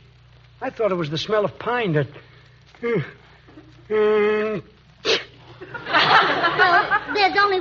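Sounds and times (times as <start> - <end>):
speech: 0.6 - 3.2, 3.9 - 5.8, 6.6 - 7.5
person sneezing: 5.0 - 5.4
laughter: 5.4 - 7.5.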